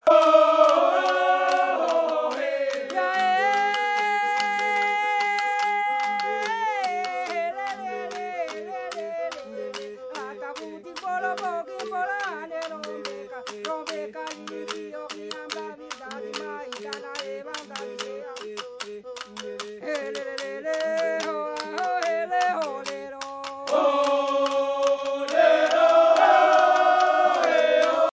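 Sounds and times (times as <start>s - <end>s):
vocal hocket: 0.0s - 28.1s.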